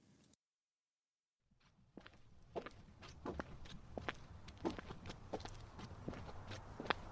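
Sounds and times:
soft footsteps on a walk: 0:01.6 - 0:07.0.

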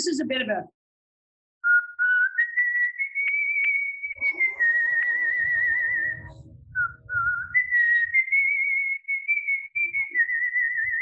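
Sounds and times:
speech: 0:00.0 - 0:00.8
person whistling a pop-style tune: 0:01.6 - 0:11.0
low rumbling noise: 0:04.2 - 0:08.2.

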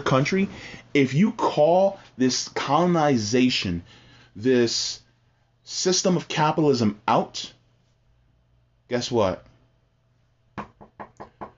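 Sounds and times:
speech: 0:00.0 - 0:05.0, 0:05.7 - 0:07.6, 0:08.9 - 0:09.5
sharp knocking on a door: 0:10.6 - 0:11.5.

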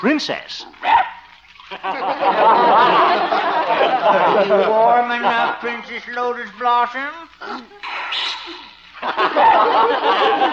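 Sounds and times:
speech: 0:00.0 - 0:01.0, 0:01.7 - 0:10.5
laughter: 0:01.7 - 0:06.1, 0:09.0 - 0:10.5
Pekingese dog sneezing while being given a bath: 0:07.4 - 0:08.9.

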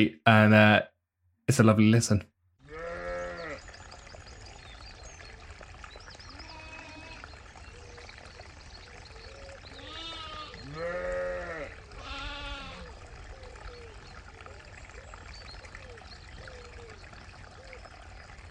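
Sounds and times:
speech: 0:00.0 - 0:00.9, 0:01.5 - 0:02.3
steady outdoor background: 0:00.0 - 0:18.4
sheep and newborn lambs bleating in the countryside: 0:02.6 - 0:03.6, 0:06.3 - 0:07.3, 0:09.8 - 0:12.9.

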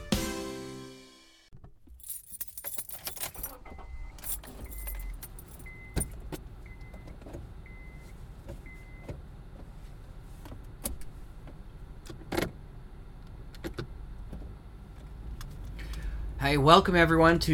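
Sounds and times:
steady low road rumble inside a moving car: 0:03.5 - 0:17.5
speech: 0:16.5 - 0:17.5.

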